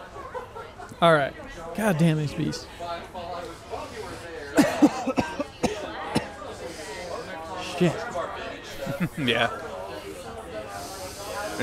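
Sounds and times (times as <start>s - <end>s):
laughter: 0.0s - 1.0s, 3.7s - 11.6s
faint murmur of voices: 0.0s - 11.6s
speech: 1.0s - 3.2s, 7.8s - 8.1s, 9.0s - 9.7s
harsh raspy coughing fit from a three-week cough: 4.5s - 7.0s.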